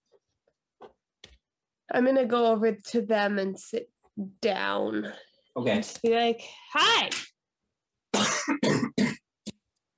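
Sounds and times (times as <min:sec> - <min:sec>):
speech: 0:01.9 - 0:07.3, 0:08.4 - 0:09.0
person coughing harshly: 0:08.1 - 0:09.3.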